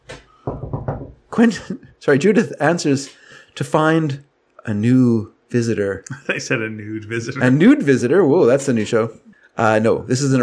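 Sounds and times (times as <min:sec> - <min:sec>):
knocking on a door: 0:00.4 - 0:01.3
speech: 0:01.4 - 0:10.4.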